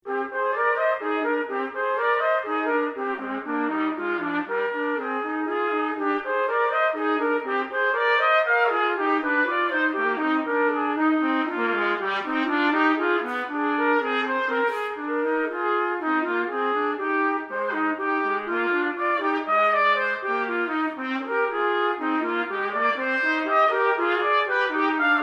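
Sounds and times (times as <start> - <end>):
trumpet duet: 0.0 - 25.2.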